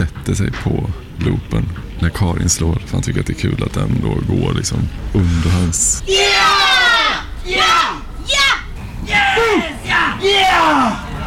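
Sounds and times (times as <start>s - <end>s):
speech: 0.3s - 6.6s
man yelling: 5.6s - 11.1s.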